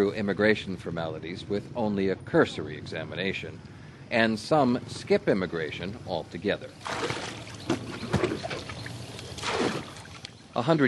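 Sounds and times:
speech: 0:00.0 - 0:07.4, 0:10.6 - 0:10.8
soft paddle splashes on a narrow river: 0:06.8 - 0:10.3
river water lapping against small wooden boats: 0:06.8 - 0:10.6.

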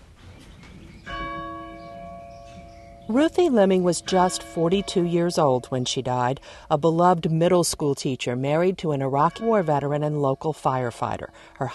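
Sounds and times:
church bell ringing, pulled by rope: 0:01.1 - 0:06.4, 0:09.1 - 0:11.7
speech: 0:03.1 - 0:11.7.

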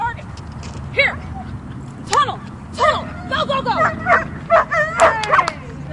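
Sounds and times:
low rumble: 0:00.0 - 0:05.9
small gray cattle dog yipping during an agility run: 0:03.1 - 0:05.6.

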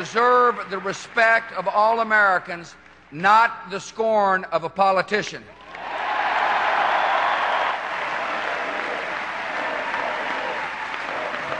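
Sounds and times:
large crowd of convention delegates applauding a speech: 0:00.0 - 0:01.9, 0:05.6 - 0:11.5
speech: 0:00.0 - 0:05.6.

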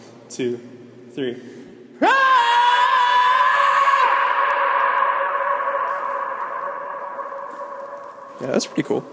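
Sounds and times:
speech: 0:00.3 - 0:02.3, 0:08.4 - 0:09.1
people yelling loudly echoing inside a mountain tunnel: 0:02.0 - 0:08.5.

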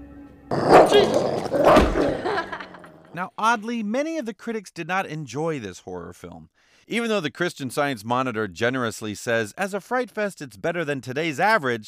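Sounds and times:
dog barking with a low growly edge: 0:00.5 - 0:02.1
laughter: 0:01.8 - 0:03.1
speech: 0:03.2 - 0:11.8.

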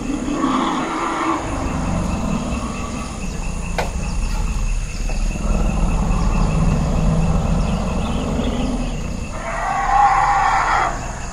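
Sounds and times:
elephant herd bellowing, rumbling and trumpeting during a mating: 0:00.0 - 0:11.3
steady insect-like hiss: 0:00.0 - 0:11.3
shrill elephant cry: 0:09.3 - 0:11.2.

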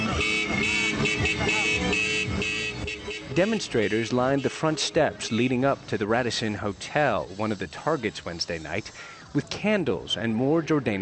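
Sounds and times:
car horns blaring in a busy street: 0:00.0 - 0:07.7
crowd noise: 0:00.0 - 0:10.9
dense traffic noise: 0:00.0 - 0:10.9
speech: 0:03.4 - 0:10.9.

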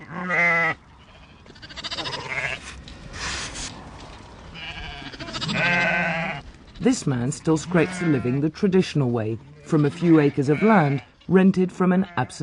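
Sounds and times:
flock of sheep and lambs bleating in a muddy enclosure: 0:00.0 - 0:02.8, 0:04.5 - 0:06.5, 0:07.4 - 0:08.5, 0:09.4 - 0:11.2, 0:11.8 - 0:12.4
sheep rustling and shuffling: 0:00.0 - 0:12.4
speech: 0:06.8 - 0:12.4.

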